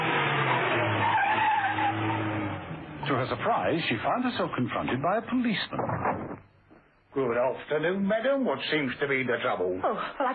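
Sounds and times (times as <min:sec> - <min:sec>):
car tires squealing while skidding to a halt: 0:00.0 - 0:02.9
speech: 0:03.1 - 0:06.3, 0:07.2 - 0:10.3.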